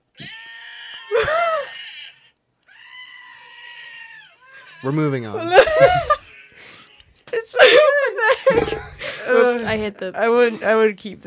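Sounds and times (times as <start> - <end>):
screaming goat bleat played from a phone app: 0.2 - 6.2
speech: 4.8 - 6.1, 9.3 - 11.2
laughter: 5.4 - 6.3, 7.6 - 9.3.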